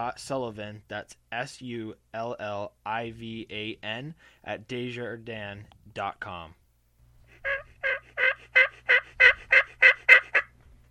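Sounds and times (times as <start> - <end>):
speech: 0.0 - 6.6
wild turkey gobbling: 7.4 - 10.5.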